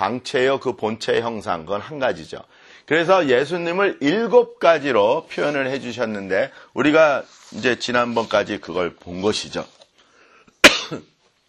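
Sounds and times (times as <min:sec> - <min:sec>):
speech: 0:00.0 - 0:09.8, 0:10.9 - 0:11.1
person coughing while preaching: 0:10.6 - 0:11.2.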